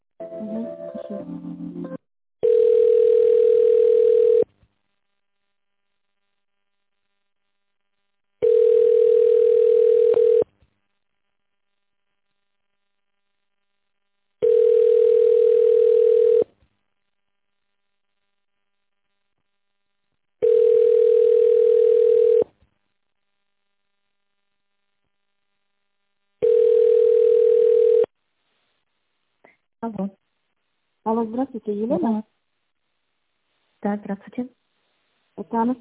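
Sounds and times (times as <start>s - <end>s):
telephone ringback tone while a call is being transferred: 2.4s - 4.4s, 8.4s - 10.4s, 14.4s - 16.4s, 20.4s - 22.4s, 26.4s - 28.1s
speech: 31.3s - 32.3s, 33.8s - 34.6s, 35.4s - 35.7s.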